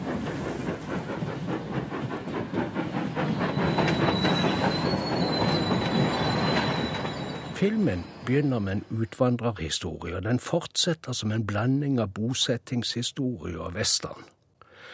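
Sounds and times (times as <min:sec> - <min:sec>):
arriving train wheel clatter: 0:00.0 - 0:08.6
high sustained metallic squealing of train brakes and wheels: 0:03.3 - 0:09.0
speech: 0:07.6 - 0:14.4.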